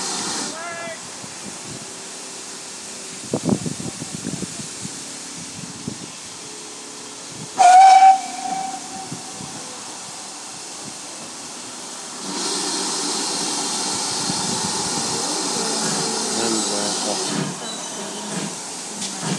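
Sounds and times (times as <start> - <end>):
steady steam hiss: 0.0 - 19.3
steam locomotive whistle: 7.6 - 9.5.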